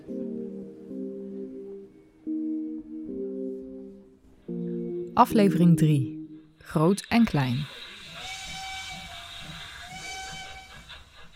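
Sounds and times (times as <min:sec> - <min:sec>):
speech: 0:05.2 - 0:07.8
steam escaping from a model steam locomotive: 0:07.6 - 0:11.3
model steam locomotive whistle blasts: 0:07.9 - 0:11.0.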